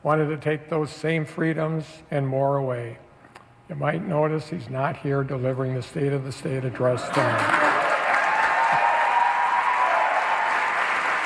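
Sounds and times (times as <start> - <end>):
speech: 0.0 - 3.0, 3.7 - 7.6
large indoor crowd of legislators applauding in a chamber: 7.1 - 11.2.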